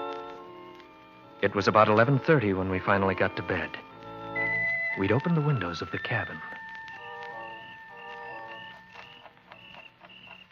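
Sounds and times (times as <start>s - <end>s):
alarm clock ticking quietly: 0.1s - 10.4s
speech: 1.4s - 3.8s, 5.0s - 6.6s
crickets chirring outside: 6.4s - 10.4s.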